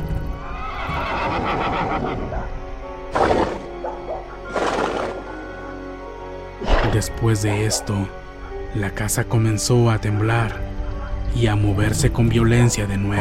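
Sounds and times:
horse whinnying shrilly: 0:00.5 - 0:02.4, 0:03.1 - 0:03.8, 0:04.5 - 0:05.4, 0:06.6 - 0:07.1
speech: 0:07.0 - 0:10.6, 0:11.3 - 0:13.1.

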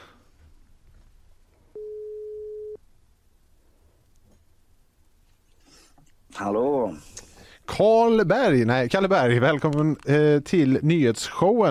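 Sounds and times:
faint hiss: 0:00.0 - 0:11.6
electronic telephone tone as a call is placed: 0:01.8 - 0:02.8
speech: 0:06.4 - 0:11.6.

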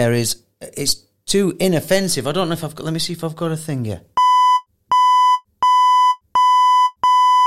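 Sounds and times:
speech: 0:00.0 - 0:04.2
electronic alarm beeping: 0:04.2 - 0:07.4.

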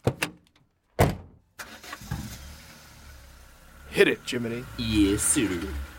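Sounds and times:
vintage Mercedes-Benz W25 Silver Arrow race car engine cranking and starting: 0:01.6 - 0:05.9
speech: 0:04.0 - 0:05.9.

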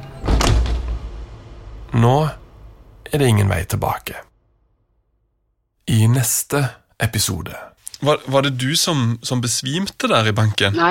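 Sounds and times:
heavy bank door in Halden pushed open: 0:00.0 - 0:01.2
speech: 0:01.9 - 0:02.4, 0:03.1 - 0:04.3, 0:05.9 - 0:10.9.

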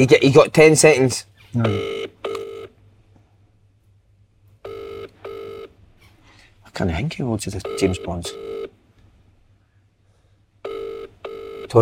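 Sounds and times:
speech: 0:00.0 - 0:02.0, 0:06.8 - 0:08.6
quiet room hum: 0:00.0 - 0:11.8
phone dialing tone on speakerphone: 0:04.6 - 0:05.8, 0:07.7 - 0:08.7, 0:10.6 - 0:11.8.

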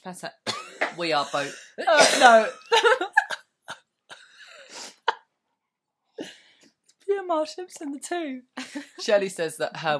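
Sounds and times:
speech: 0:00.0 - 0:03.1, 0:07.3 - 0:09.9
harsh coughs in uneven bursts: 0:00.5 - 0:02.7
laughter: 0:01.1 - 0:03.8.

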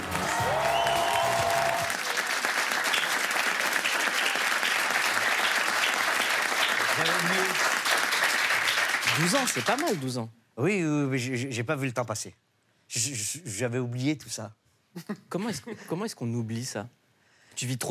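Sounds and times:
sustained applause from a large audience: 0:00.0 - 0:10.1
speech: 0:09.2 - 0:17.0, 0:17.6 - 0:17.8.

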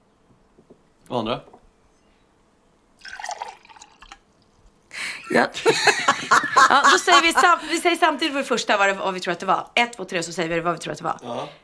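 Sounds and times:
speech: 0:01.1 - 0:01.5, 0:05.3 - 0:11.6
warm liquid poured into a glass: 0:03.0 - 0:04.3
laughter: 0:05.0 - 0:08.0.

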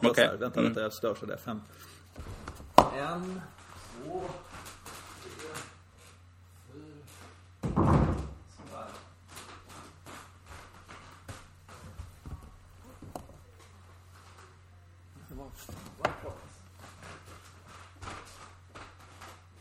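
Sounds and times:
speech: 0:00.0 - 0:04.7
heavy mirrored wardrobe door swinging shut: 0:07.6 - 0:08.4.

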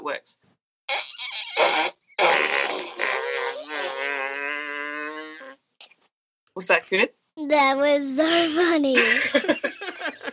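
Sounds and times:
speech: 0:00.1 - 0:01.9, 0:06.6 - 0:09.6
fake fart noise blown into cupped hands: 0:00.9 - 0:05.6.

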